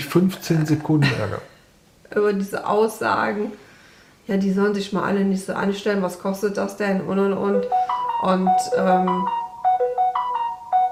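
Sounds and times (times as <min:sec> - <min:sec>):
speech: 0:00.1 - 0:01.5, 0:02.1 - 0:03.6, 0:04.3 - 0:09.4
mobile phone ringtone with bright electronic tones: 0:07.6 - 0:10.9.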